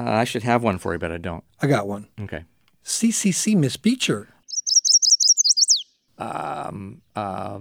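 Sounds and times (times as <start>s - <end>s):
speech: 0.0s - 4.4s, 6.2s - 7.6s
chestnut-sided warbler singing: 4.4s - 6.1s.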